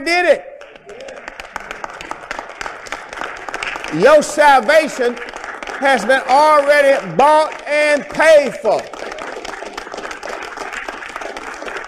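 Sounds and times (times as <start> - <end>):
speech: 0.0 - 0.6, 3.9 - 9.0
crowd applauding: 0.2 - 11.8.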